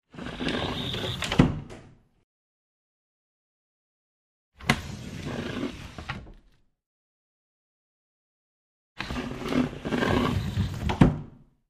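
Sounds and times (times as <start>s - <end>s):
sliding cabinet and cupboard door opening and closing: 0.1s - 2.0s, 4.6s - 6.5s, 9.0s - 11.4s.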